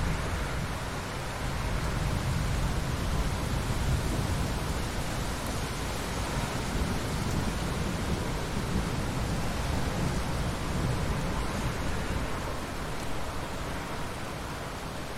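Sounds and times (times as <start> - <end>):
steady dense rain: 0.0 - 15.1.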